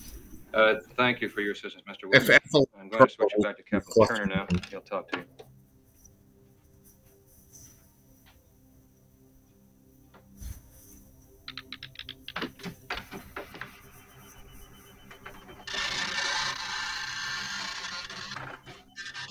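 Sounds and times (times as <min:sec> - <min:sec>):
speech: 0:00.5 - 0:05.4
dot matrix printer printing: 0:13.1 - 0:19.3.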